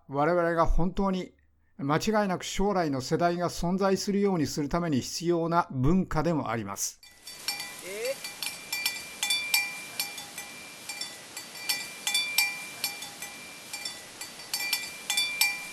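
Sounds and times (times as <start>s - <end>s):
speech: 0.1s - 7.1s
metal cattle bells clanking as a herd is driven: 7.0s - 15.7s.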